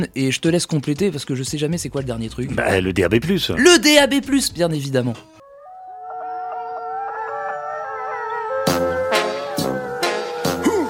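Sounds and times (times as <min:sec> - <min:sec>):
speech: 0:00.0 - 0:05.4
dogs howling at a gate: 0:05.4 - 0:10.8.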